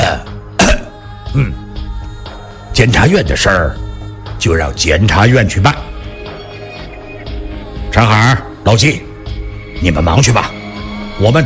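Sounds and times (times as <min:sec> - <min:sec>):
low throaty vocal noises: 0:00.0 - 0:01.8
man coughing: 0:00.6 - 0:01.0
speech: 0:01.4 - 0:01.6, 0:02.8 - 0:03.8, 0:04.4 - 0:05.9, 0:08.0 - 0:09.1, 0:09.8 - 0:10.6, 0:11.2 - 0:11.4.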